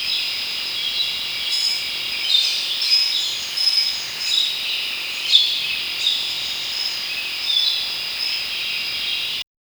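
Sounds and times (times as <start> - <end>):
soft rustling of leaves: 0.0 - 9.4.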